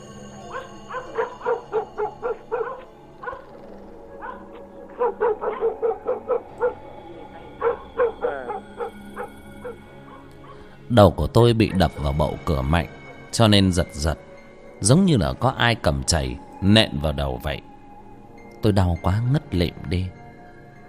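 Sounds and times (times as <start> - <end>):
dogs barking around a village neighbourhood: 0.4 - 10.8
speech: 11.0 - 14.2, 14.8 - 17.7, 18.6 - 20.2.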